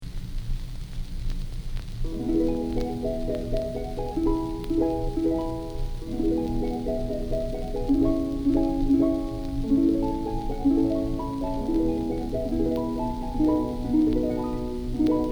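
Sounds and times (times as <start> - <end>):
solo harp playing Christmas hymns: 2.1 - 15.3.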